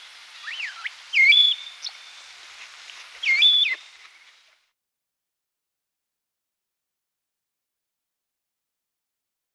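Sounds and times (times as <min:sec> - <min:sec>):
light background hiss: 0:00.0 - 0:04.8
starling whistles: 0:00.4 - 0:02.3, 0:03.2 - 0:04.0.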